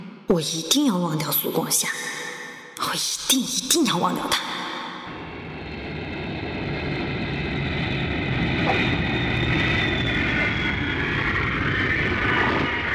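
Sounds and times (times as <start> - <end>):
speech: 0.3 - 2.2, 2.8 - 4.7
passenger airliner engine roar landing at a brightly lit airport: 4.2 - 12.9.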